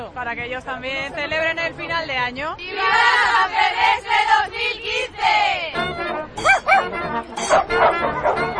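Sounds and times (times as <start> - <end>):
crowd chatter and overlapping voices: 0.0 - 8.5
speech: 0.2 - 5.7
several dogs barking: 6.4 - 8.5.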